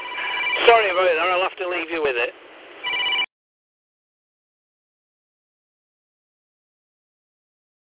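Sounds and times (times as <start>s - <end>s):
telephone ringing electronically: 0.0s - 1.1s, 2.8s - 3.3s
speech: 0.7s - 2.4s.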